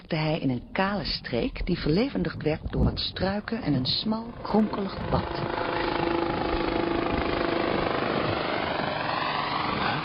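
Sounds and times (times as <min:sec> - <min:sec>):
speech: 0:00.1 - 0:06.3
helicopter flying overhead with rotor chop: 0:02.4 - 0:10.0.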